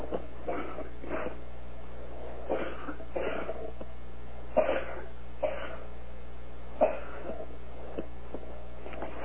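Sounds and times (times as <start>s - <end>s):
person coughing harshly over a phone line: 0.4s - 1.4s, 2.5s - 3.6s, 4.6s - 5.9s, 6.8s - 7.4s.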